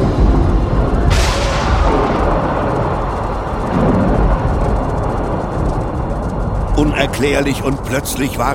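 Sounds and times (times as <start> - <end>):
thunder crash during a lightning storm: 0.0 - 7.2
speech: 7.0 - 8.5.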